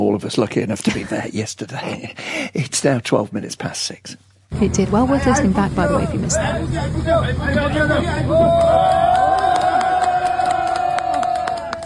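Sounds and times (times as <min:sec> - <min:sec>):
speech: 0:00.2 - 0:09.1
crowd noise as two workers are rescued from a hydropower tunnel in Nepal: 0:04.6 - 0:09.2
people shouting in a crowd: 0:07.6 - 0:11.8.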